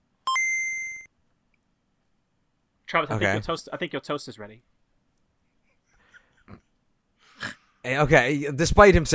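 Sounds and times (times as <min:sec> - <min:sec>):
electronic notification chime from a Game Boy handheld game console: 0:00.3 - 0:01.1
speech: 0:02.9 - 0:04.8, 0:07.8 - 0:09.1.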